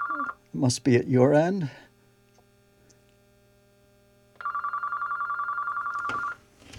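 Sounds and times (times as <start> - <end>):
phone ringing with a rapid electronic trill: 0.0 - 0.4, 4.4 - 6.5
speech: 0.1 - 1.8.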